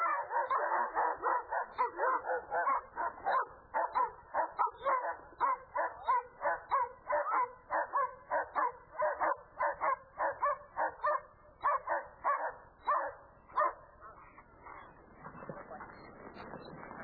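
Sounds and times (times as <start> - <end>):
dog barking aggressively during protection-dog training demonstration: 0.0 - 13.8.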